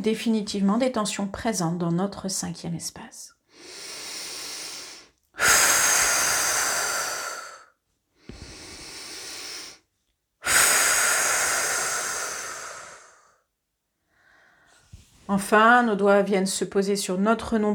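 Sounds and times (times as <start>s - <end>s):
speech: 0.0s - 3.4s, 15.3s - 17.7s
deep breathing out during a guided relaxation exercise: 3.5s - 9.8s, 10.4s - 13.4s.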